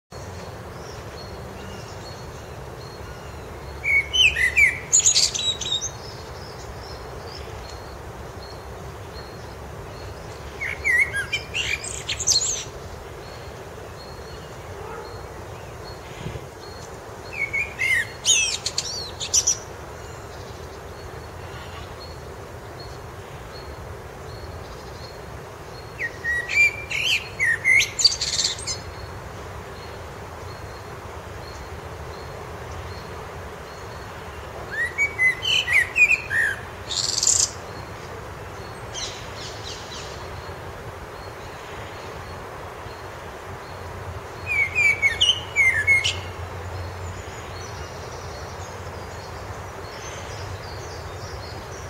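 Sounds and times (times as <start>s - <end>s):
blackbird singing: 0.8s - 8.6s, 9.2s - 13.4s, 16.6s - 20.6s, 25.8s - 29.1s, 34.7s - 37.8s, 44.4s - 51.8s.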